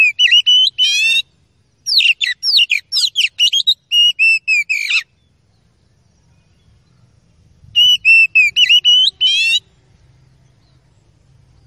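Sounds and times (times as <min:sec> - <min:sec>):
Oriental magpie-robin song: 0:00.0 - 0:05.7, 0:06.4 - 0:09.7.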